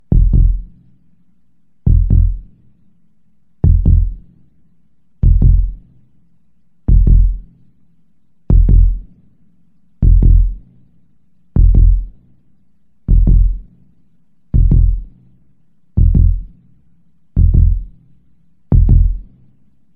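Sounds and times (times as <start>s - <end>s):
low-pitched heartbeats: 0.1s - 0.8s, 1.9s - 2.5s, 3.6s - 4.2s, 5.2s - 5.8s, 6.9s - 7.5s, 8.5s - 9.1s, 10.0s - 10.6s, 11.6s - 12.2s, 13.1s - 13.7s, 14.6s - 15.1s, 16.0s - 16.5s, 17.4s - 18.0s, 18.7s - 19.3s.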